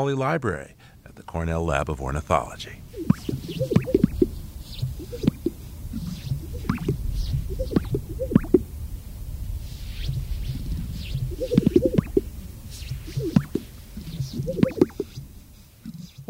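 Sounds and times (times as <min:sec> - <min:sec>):
speech: 0:00.0 - 0:04.0
greater sage-grouse popping and plopping mating display calls: 0:02.8 - 0:08.7, 0:09.8 - 0:15.3.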